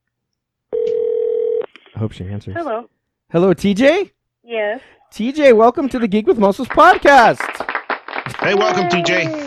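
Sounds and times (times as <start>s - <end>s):
telephone line tone as a call is placed: 0.7s - 1.7s
speech: 2.0s - 7.5s, 8.4s - 9.4s.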